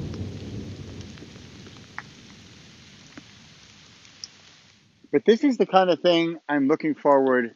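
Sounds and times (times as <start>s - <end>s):
low thunder rumble: 0.0s - 4.2s
sharp water drips: 0.0s - 5.1s
steady rain: 0.0s - 7.5s
speech: 5.1s - 7.5s.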